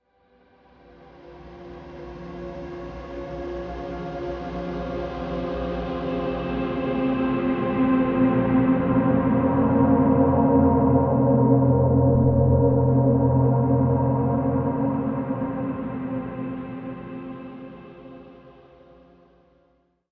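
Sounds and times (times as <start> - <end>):
ambient drone: 4.0 - 18.6.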